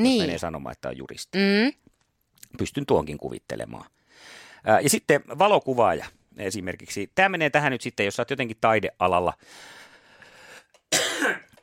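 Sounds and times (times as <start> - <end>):
speech: 0.0 - 1.8, 2.5 - 9.8, 10.9 - 11.4
slight cough or throat-clear: 10.9 - 11.6.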